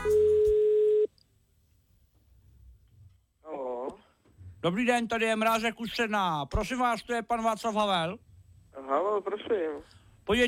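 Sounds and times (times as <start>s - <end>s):
telephone tone as a call is placed: 0.0s - 1.1s
speech: 4.6s - 8.3s, 8.9s - 10.4s.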